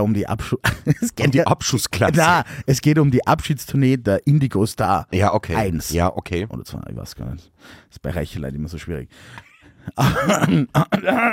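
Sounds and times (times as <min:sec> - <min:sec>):
speech: 0:00.0 - 0:11.3
throat clearing: 0:10.2 - 0:11.3.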